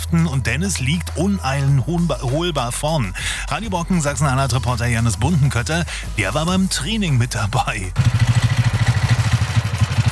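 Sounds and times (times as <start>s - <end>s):
speech: 0.1s - 8.4s
small engine of a souped-up racing ride-on lawn mower tractor chugging: 8.0s - 10.1s.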